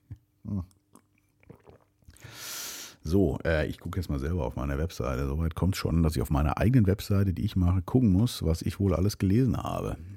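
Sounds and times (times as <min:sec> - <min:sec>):
wet mouth sounds: 0:00.1 - 0:02.4
speech: 0:00.5 - 0:00.8, 0:03.1 - 0:10.1
person slurping hot coffee: 0:01.0 - 0:03.0.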